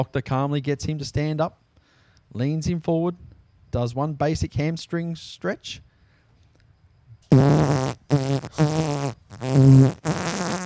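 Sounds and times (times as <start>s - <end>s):
speech: 0.0s - 1.6s, 2.3s - 5.9s
fart sound effect: 7.3s - 10.6s.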